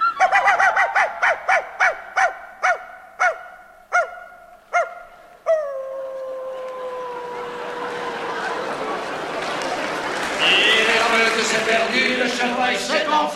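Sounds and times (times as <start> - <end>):
pack of hounds barking and yelping at a roe deer hunt: 0.1 - 6.2
laughter: 6.4 - 13.1
hunting horn blaring a rising call to rally hounds at a roe deer hunt: 10.4 - 12.6.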